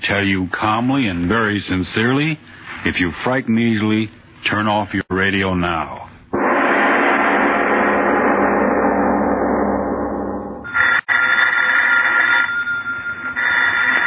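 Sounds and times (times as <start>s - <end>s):
speech: 0.0s - 6.0s
loud dense rushing sound: 6.4s - 10.7s
old-fashioned telephone bell ringing: 10.7s - 14.0s.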